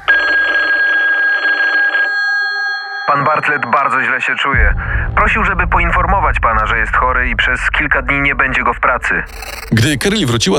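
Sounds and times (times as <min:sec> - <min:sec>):
telephone ringing: 0:00.0 - 0:04.4
speech: 0:03.4 - 0:10.5.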